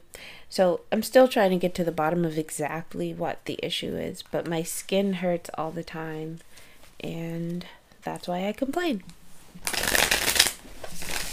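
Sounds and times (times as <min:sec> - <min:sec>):
speech: 0:00.5 - 0:09.9
tarot cards being riffle shuffled: 0:09.6 - 0:11.3.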